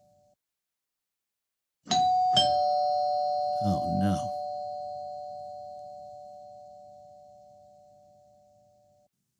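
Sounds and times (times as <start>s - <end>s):
doorbell chiming a two-note ding-dong: 1.9s - 9.1s.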